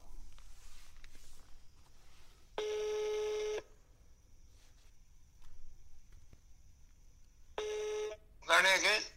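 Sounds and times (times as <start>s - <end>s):
phone call to a mobile number ringing tone: 2.6s - 3.7s, 7.6s - 8.2s.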